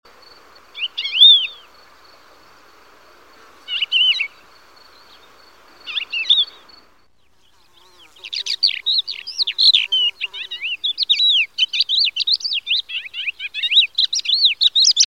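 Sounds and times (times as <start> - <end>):
Thekla's lark: 0.7 - 1.7, 3.7 - 4.4, 5.8 - 6.7, 7.8 - 15.0.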